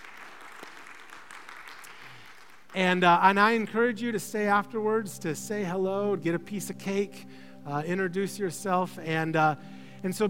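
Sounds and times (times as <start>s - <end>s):
roomful of people clapping: 0.0s - 3.2s
speech: 2.8s - 10.2s.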